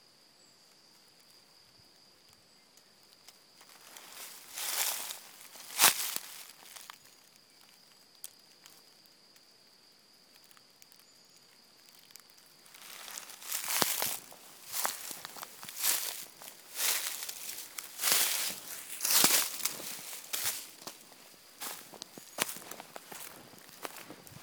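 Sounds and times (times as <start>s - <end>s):
footsteps crunching through dry leaves on a forest walk in Bergerac France: 3.7s - 7.0s, 12.7s - 24.4s.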